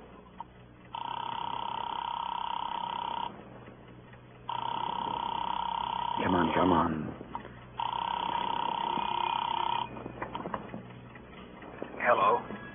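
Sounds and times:
electronic telephone ring tones heard through a handset: 0.9 - 3.4, 4.5 - 7.1, 7.8 - 10.7
speech: 6.6 - 7.0.

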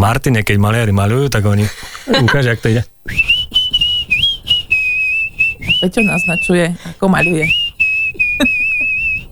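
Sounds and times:
speech: 0.0 - 3.6, 5.8 - 7.6
person whistling a high tune with vibrato: 3.1 - 9.3.

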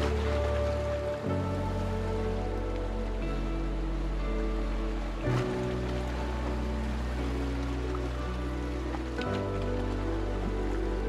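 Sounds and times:
binaural sea waves: 0.0 - 11.0
soft music of long held chords with low bass notes: 0.0 - 11.0.

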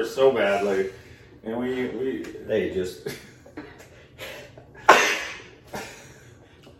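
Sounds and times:
speech: 0.0 - 3.3
person sneezing: 4.8 - 6.0.

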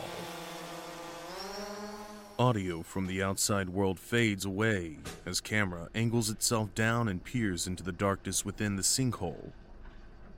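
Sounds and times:
drone engines whining while descending into a sinkhole: 0.0 - 2.6
speech: 2.4 - 9.6.

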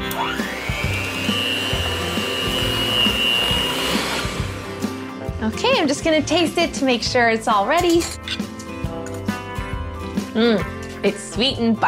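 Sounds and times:
electric mixer whirring through frosting made with heavy cream, salt and vanilla: 0.0 - 5.2
speech: 5.5 - 8.4, 10.4 - 11.8.

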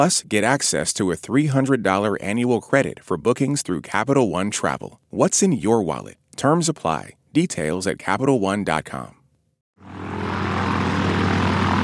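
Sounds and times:
speech: 0.0 - 9.2
propeller airplane engine droning: 9.8 - 11.8.

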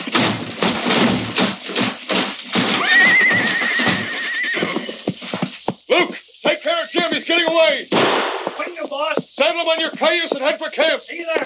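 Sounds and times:
out-of-control horses whinnying: 0.0 - 5.6
horse hooves clopping: 0.0 - 11.4
speech: 6.0 - 6.2, 7.0 - 11.4.

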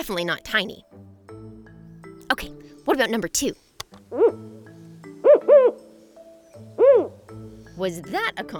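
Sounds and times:
speech: 0.0 - 1.0, 2.4 - 4.5, 7.8 - 8.5
Mexican spotted owl hooting: 4.1 - 7.7.

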